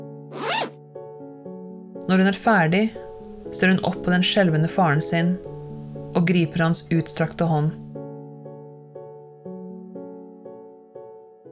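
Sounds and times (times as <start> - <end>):
jacket zipper drawn closed: 0.3 - 0.8
speech: 2.1 - 7.9.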